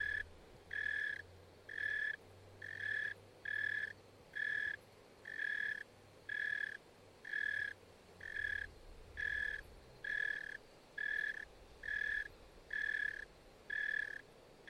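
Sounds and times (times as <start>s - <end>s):
cicada buzzing in bursts: 0.0s - 14.6s
faint low hum: 0.0s - 14.6s.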